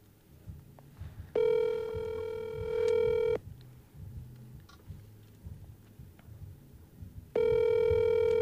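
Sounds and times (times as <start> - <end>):
electronic phone ringback tone while calling: 1.4 - 3.4, 7.4 - 8.4.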